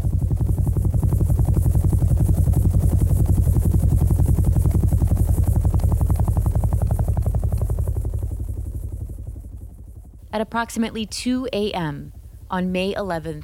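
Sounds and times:
helicopter rotor thumping with deep engine rumble: 0:00.0 - 0:13.4
speech: 0:10.4 - 0:13.4.

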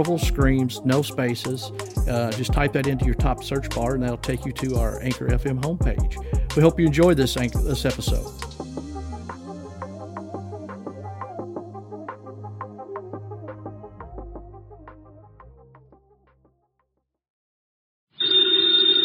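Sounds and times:
speech: 0:00.0 - 0:08.6
music: 0:00.0 - 0:17.2
telephone bell ringing: 0:18.2 - 0:19.0.

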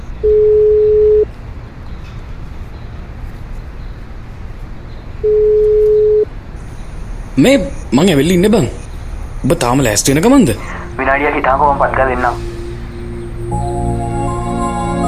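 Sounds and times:
ringback tone of an outgoing phone call near a road bend: 0:00.2 - 0:01.3, 0:05.2 - 0:06.3
constant hiss of noise: 0:06.4 - 0:15.0
speech: 0:07.4 - 0:08.8, 0:09.4 - 0:12.5.

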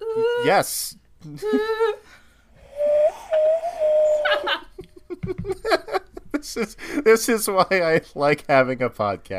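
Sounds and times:
speech: 0:00.2 - 0:02.0, 0:05.4 - 0:09.3
person giggling and laughing: 0:01.3 - 0:02.0, 0:04.2 - 0:06.7
person whistling a flute-like tune into a microphone: 0:02.6 - 0:04.6.

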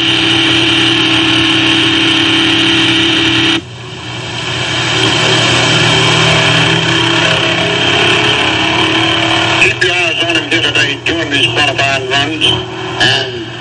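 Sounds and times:
1957 Ford stock car engine roaring on a race track during a qualifying run: 0:00.0 - 0:13.5
indistinct voice: 0:05.0 - 0:13.5.

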